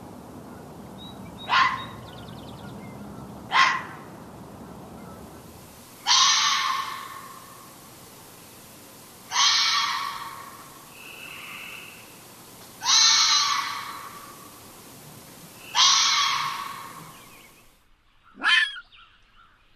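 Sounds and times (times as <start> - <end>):
red fox screaming: 3.5 - 4.0, 6.0 - 7.4, 9.3 - 10.7, 12.8 - 14.6, 15.7 - 17.1, 18.4 - 18.9.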